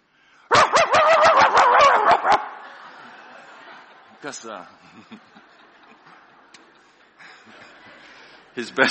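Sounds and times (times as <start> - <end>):
man's voice imitating a pet dog barking: 0.5 - 2.4
laughter: 1.2 - 6.3.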